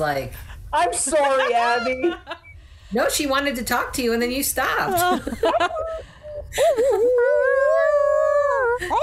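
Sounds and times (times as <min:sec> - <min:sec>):
speech: 0:00.0 - 0:07.5, 0:08.8 - 0:09.0
dog whimpering: 0:05.5 - 0:09.0
dog howling: 0:06.9 - 0:08.8.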